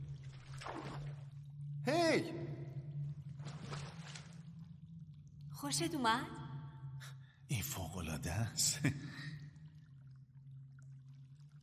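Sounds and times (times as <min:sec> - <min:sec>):
water pouring and splashing: 0:00.0 - 0:01.6, 0:03.2 - 0:04.9, 0:09.5 - 0:11.6
speech: 0:00.6 - 0:01.2, 0:01.8 - 0:02.7, 0:05.6 - 0:06.4, 0:07.5 - 0:09.4.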